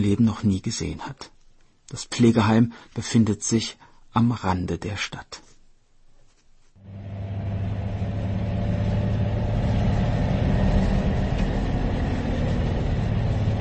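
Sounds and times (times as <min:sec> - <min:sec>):
speech: 0:00.0 - 0:05.5
broadband road noise: 0:06.8 - 0:13.5
rumbling engine drone inside a moving bus: 0:06.8 - 0:13.5.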